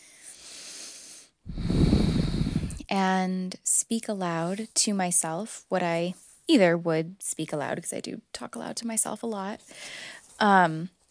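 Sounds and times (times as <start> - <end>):
slow deliberate breathing: 0.0 - 2.9, 9.7 - 10.4
speech: 2.9 - 11.0.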